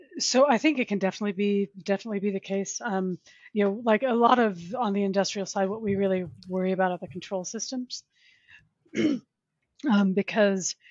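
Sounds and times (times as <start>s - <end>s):
speech: 0.2s - 8.1s, 8.9s - 10.8s
throat-clearing cough from a person with a cough: 8.9s - 9.3s.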